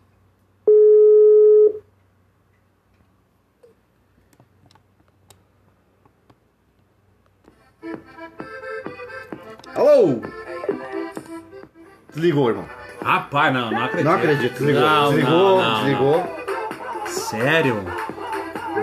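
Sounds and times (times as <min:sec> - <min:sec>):
telephone ringing tone while placing a call: 0:00.7 - 0:01.8
speech: 0:10.0 - 0:10.3, 0:12.2 - 0:16.4, 0:17.3 - 0:18.1.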